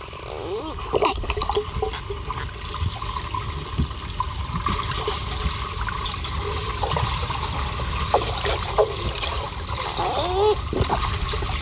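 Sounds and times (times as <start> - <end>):
rushing bubbling underwater water noise: 0.0 - 11.6
dolphin whistles underwater: 10.0 - 10.9.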